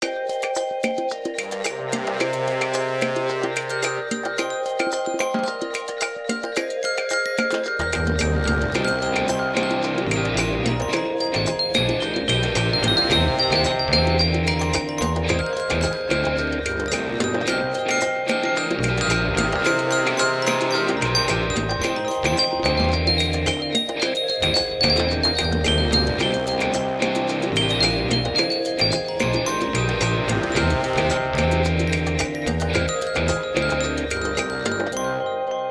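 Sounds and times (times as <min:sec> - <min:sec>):
underwater music jam: 0:00.0 - 0:35.4.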